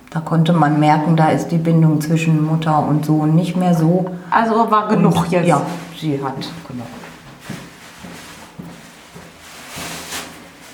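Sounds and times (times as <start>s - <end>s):
speech: 0.1s - 7.0s
soft shuffling steps on plastic foot coverings: 4.8s - 10.7s
plastic shoe covers rustling: 5.3s - 10.7s.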